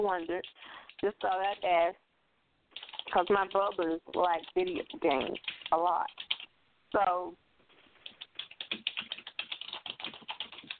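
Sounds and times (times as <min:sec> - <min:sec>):
typing on a computer keyboard: 0:00.0 - 0:01.8, 0:02.7 - 0:06.5, 0:08.0 - 0:10.7
speech: 0:00.0 - 0:02.0, 0:03.1 - 0:06.3, 0:06.9 - 0:07.4.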